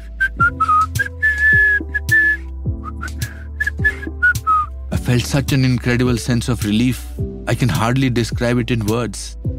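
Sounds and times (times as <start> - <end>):
person whistling bright clear notes: 0.0 - 4.8
speech: 5.1 - 9.5.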